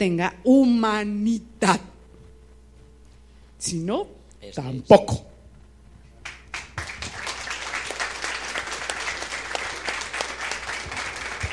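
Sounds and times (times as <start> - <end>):
speech: 0.0 - 1.9, 3.6 - 5.3
room full of people applauding: 6.2 - 11.5.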